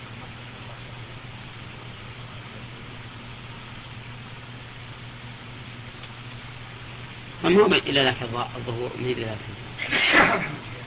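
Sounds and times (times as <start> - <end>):
speech: 7.4 - 10.6
person sneezing: 9.8 - 10.7.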